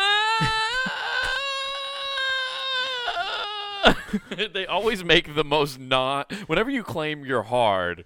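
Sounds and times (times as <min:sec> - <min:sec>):
man sobbing after being hit and falling: 0:00.0 - 0:05.0
speech: 0:00.4 - 0:00.6, 0:04.1 - 0:08.0.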